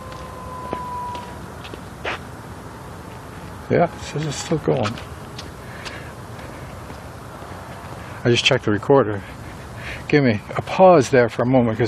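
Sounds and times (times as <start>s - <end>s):
faint siren wailing outside: 0.0s - 4.8s
hum: 0.0s - 11.8s
speech: 3.7s - 5.1s, 8.2s - 9.4s, 10.1s - 11.8s.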